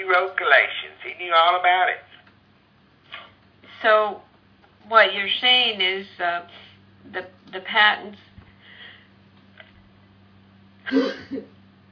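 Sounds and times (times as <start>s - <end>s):
speech: 0.0s - 2.1s, 3.8s - 4.3s, 4.9s - 8.3s, 10.9s - 11.5s
faint low hum: 0.0s - 11.9s
person sneezing: 10.9s - 11.4s.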